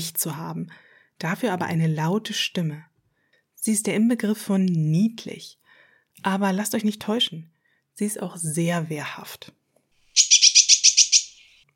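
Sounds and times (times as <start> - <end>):
speech: 0.0 - 2.9, 3.6 - 5.6, 6.2 - 9.6
blue tit calling with high scolding notes: 10.2 - 11.6.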